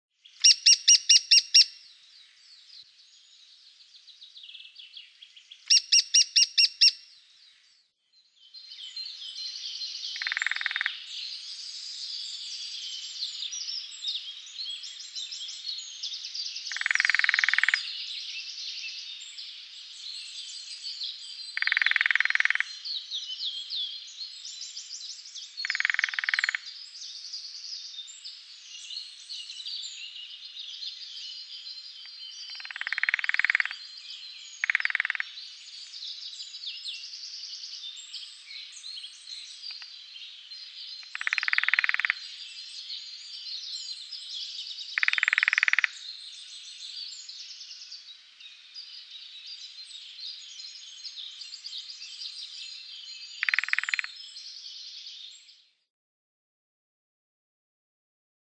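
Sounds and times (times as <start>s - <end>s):
woodpecker: 0.4s - 1.8s, 5.7s - 7.0s, 10.1s - 11.0s, 16.7s - 18.0s, 21.6s - 22.8s, 25.6s - 26.7s, 32.0s - 33.8s, 34.6s - 35.3s, 39.7s - 39.9s, 41.0s - 42.3s, 45.0s - 46.0s, 53.4s - 54.2s.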